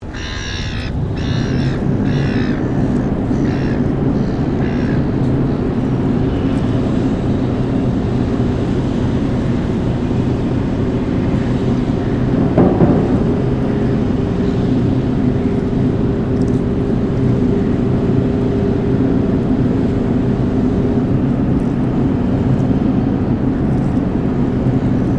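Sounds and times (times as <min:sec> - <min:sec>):
gulls squawking over the ocean: 0:00.0 - 0:05.8
operating dredger heavy machinery rumbling: 0:00.0 - 0:25.1.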